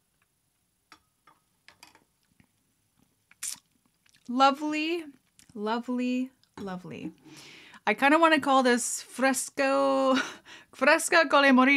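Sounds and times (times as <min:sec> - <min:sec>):
brief sharper slurp: 0:03.3 - 0:04.2
person sipping a cocktail with blackberries: 0:03.3 - 0:04.3
speech: 0:04.3 - 0:11.7.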